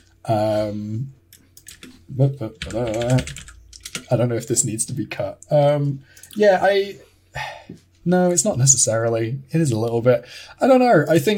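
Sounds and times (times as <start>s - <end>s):
speech: 0.2s - 1.2s, 2.1s - 3.5s, 4.1s - 11.3s
typing on a computer keyboard: 1.6s - 4.2s.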